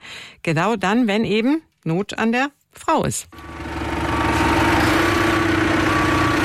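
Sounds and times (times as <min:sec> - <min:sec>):
speech: 0:00.4 - 0:03.5
diesel tractor engine reversing at low speed: 0:03.4 - 0:06.4.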